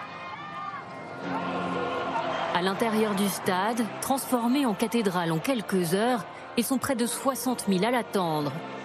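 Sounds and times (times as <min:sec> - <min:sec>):
people shouting: 0:00.0 - 0:03.4
dense crowd murmuring and calling out along a route: 0:00.0 - 0:06.3
speech: 0:02.6 - 0:08.8.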